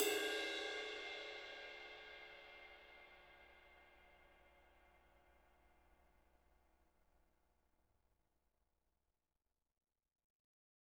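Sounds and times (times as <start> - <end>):
ride cymbal: 0.0 - 3.5.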